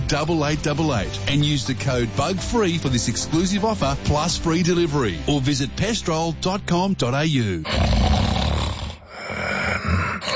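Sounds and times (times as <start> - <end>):
speech: 0.1 - 8.2
loud rasping snoring: 7.6 - 10.3
rumbling breaths: 7.7 - 10.3.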